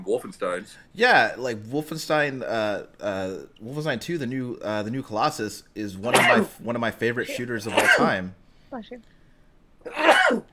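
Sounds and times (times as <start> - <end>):
speech: 0.0 - 9.2, 9.8 - 10.5
person sneezing from allergies: 6.1 - 6.5, 7.3 - 8.2.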